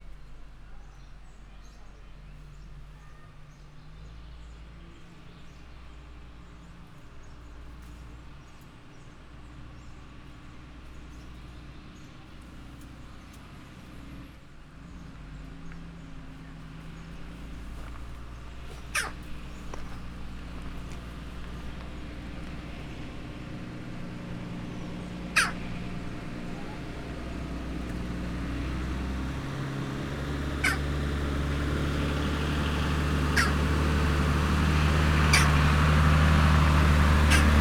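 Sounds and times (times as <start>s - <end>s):
jackdaw calling in a zoo: 16.8s - 37.5s.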